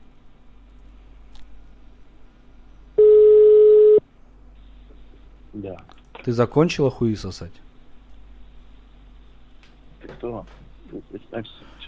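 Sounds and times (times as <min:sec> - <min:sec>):
telephone line tone while a number is dialed: 0:03.0 - 0:04.0
speech: 0:05.6 - 0:07.6, 0:10.5 - 0:11.8.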